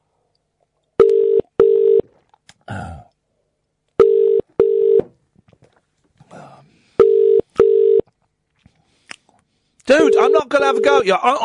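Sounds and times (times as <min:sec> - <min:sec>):
telephone ringing tone on a call: 0:01.0 - 0:02.0, 0:04.0 - 0:05.0, 0:07.0 - 0:08.0, 0:10.0 - 0:11.0
speech: 0:10.5 - 0:11.4.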